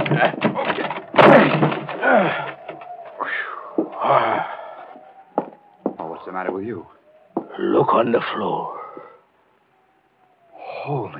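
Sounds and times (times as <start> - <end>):
door on a scow forced open with a crash: 0.0 - 3.1
door on a scow bumping as it gives way: 0.0 - 3.2, 5.4 - 6.6
door on a scow creaking: 0.0 - 4.4
speech: 0.1 - 0.6, 6.5 - 7.0, 7.6 - 8.8.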